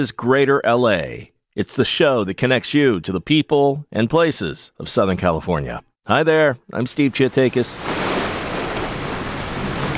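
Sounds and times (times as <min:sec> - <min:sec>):
speech: 0:00.0 - 0:08.0
Pacific Ocean surf washing against the shore: 0:07.2 - 0:09.9.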